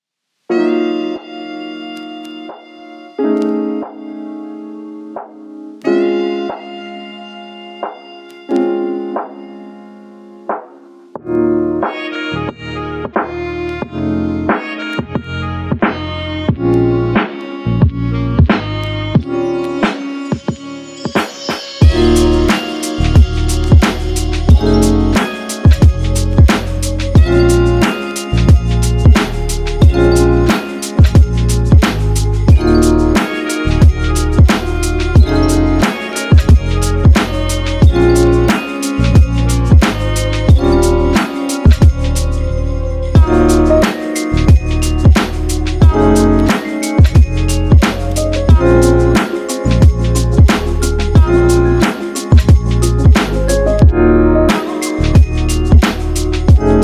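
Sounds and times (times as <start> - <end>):
sexy chill music: 0.5 - 56.8.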